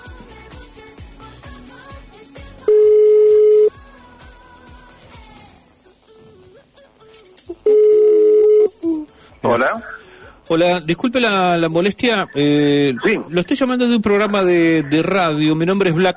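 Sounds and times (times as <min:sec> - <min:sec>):
mobile call ringback tones on a 4G network: 0:02.7 - 0:03.7, 0:07.6 - 0:08.8
speech: 0:09.6 - 0:16.1.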